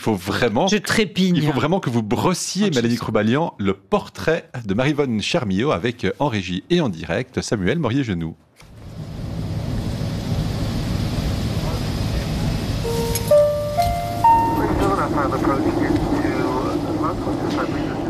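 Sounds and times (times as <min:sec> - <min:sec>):
speech: 0:00.0 - 0:08.4
steady airplane cabin drone with engine hum: 0:08.8 - 0:18.0
bright chime tones: 0:12.8 - 0:15.2.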